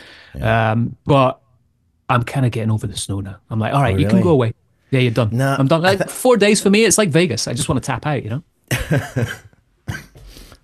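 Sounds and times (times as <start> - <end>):
speech: 0.4 - 1.4, 2.1 - 10.0
chesty cough from a person with a lingering chest cold: 9.2 - 10.2.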